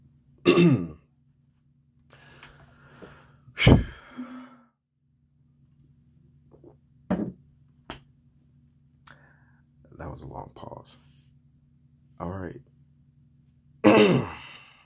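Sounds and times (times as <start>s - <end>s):
person clearing throat: 0.4s - 1.0s, 13.8s - 14.5s
speech: 0.6s - 0.9s, 10.6s - 11.1s
breathy sounds: 2.1s - 4.8s, 14.1s - 14.8s.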